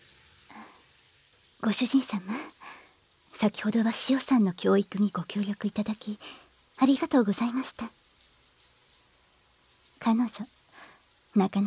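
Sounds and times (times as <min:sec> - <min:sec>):
shower water running in a bathroom: 0:00.0 - 0:11.6
speech: 0:01.6 - 0:02.6, 0:03.4 - 0:08.0, 0:10.0 - 0:10.6, 0:11.4 - 0:11.6.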